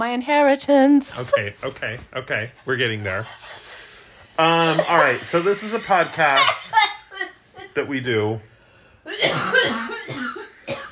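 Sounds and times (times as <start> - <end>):
speech: 0.0 - 3.6, 4.4 - 6.8, 7.8 - 10.2
woman coughing harsh raspy coughs: 5.8 - 7.0, 9.1 - 10.9.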